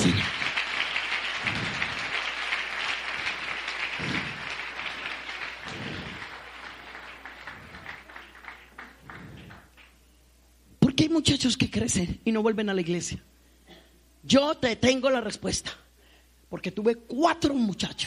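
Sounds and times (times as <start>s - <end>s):
audience applauding: 0.0s - 10.0s
speech: 11.0s - 13.3s, 14.3s - 15.8s, 16.5s - 18.0s.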